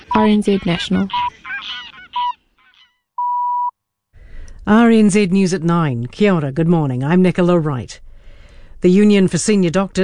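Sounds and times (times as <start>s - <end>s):
greylag goose honking: 0.0s - 2.9s
speech: 0.2s - 1.2s, 4.7s - 8.1s, 8.8s - 10.0s
steady electronic beep tone: 3.2s - 3.7s.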